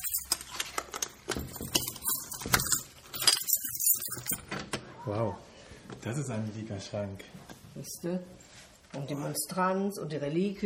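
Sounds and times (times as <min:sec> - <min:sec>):
large key on a ring jangling as pulled out: 0:00.0 - 0:00.5, 0:01.4 - 0:04.4
speech: 0:05.1 - 0:10.6.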